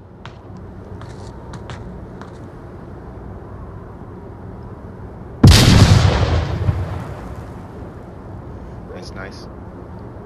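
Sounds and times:
frag grenade explosion: 5.4s - 7.7s.

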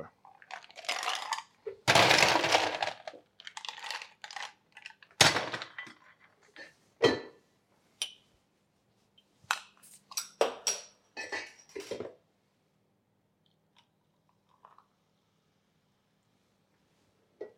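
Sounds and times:
ice cubes clattering into a cocktail glass behind a bar: 0.5s - 6.0s.

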